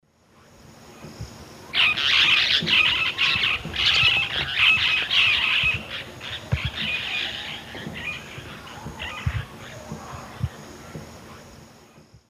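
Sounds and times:
Touit huetii flock flight calls in the Eastern Lowlands of South America: 1.7 - 11.6.

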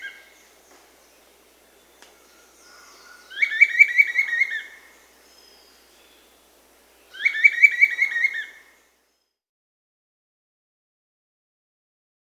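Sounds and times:
Bright-rumped Attila singing rapid buzzy-edged whistled notes in South America: 0.0 - 8.7.

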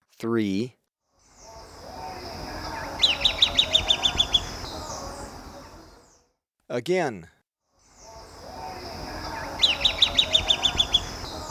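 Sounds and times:
speech: 0.2 - 0.8, 6.7 - 7.4
red-billed tyrannulet giving high piping notes in Ecuador: 1.3 - 6.1, 7.9 - 11.4.

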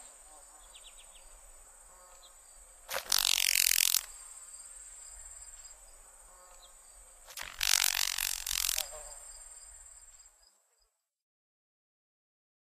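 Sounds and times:
faint steady high-pitched background hiss: 0.0 - 10.5
Carolina grasshopper wing-snapping crepitation: 2.9 - 4.2, 6.4 - 9.1.

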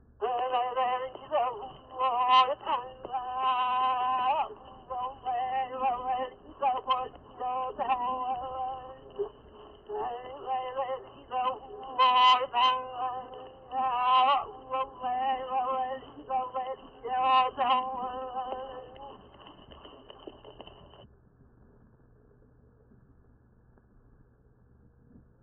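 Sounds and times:
Hawaiian chant of affectionate lamentation: 0.2 - 19.2.

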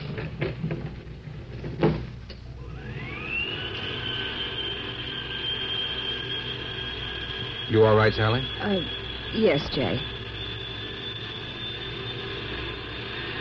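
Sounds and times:
elevator motor whine and mechanical hum as the lift climbs: 0.0 - 13.3
speech: 7.7 - 10.2.

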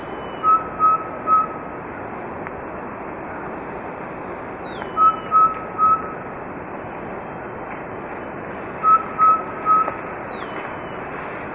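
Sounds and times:
soft constant hiss: 0.0 - 11.5
subtropical pygmy owl giving short even whistled toots in Ecuador: 0.1 - 1.6, 4.8 - 6.2, 8.8 - 10.5.

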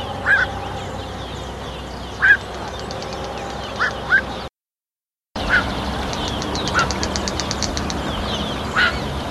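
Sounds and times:
Black-crowned Night-Heron in South America: 0.1 - 0.7, 2.2 - 4.3, 5.4 - 8.0, 8.6 - 9.1.

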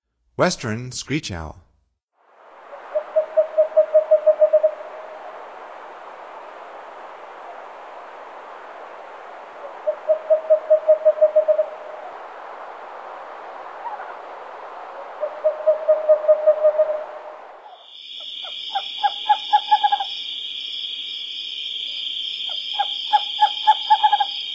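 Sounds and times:
Western Screech-Owl: 2.7 - 5.3, 9.7 - 12.1, 15.0 - 20.3, 21.9 - 24.5.

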